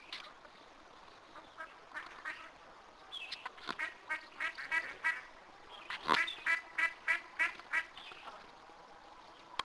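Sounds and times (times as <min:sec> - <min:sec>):
duck quacking with harsh nasal quacks: 0:01.3 - 0:02.6, 0:03.7 - 0:05.3, 0:05.9 - 0:07.9.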